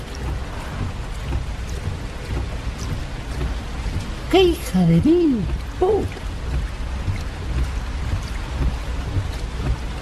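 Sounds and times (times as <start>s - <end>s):
heavy rain on a car during a downpour: 0.0s - 10.0s
low rumbling: 0.0s - 10.0s
speech: 4.3s - 6.2s.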